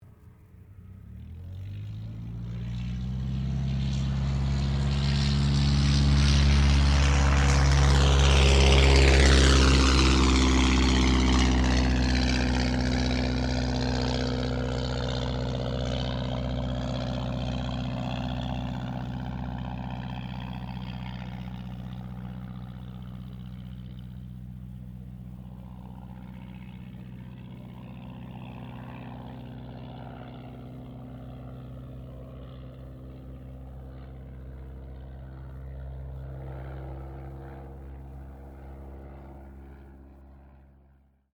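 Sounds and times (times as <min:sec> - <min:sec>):
de Havilland DH82A Tiger Moth biplane touch and go: 0:00.0 - 0:41.3.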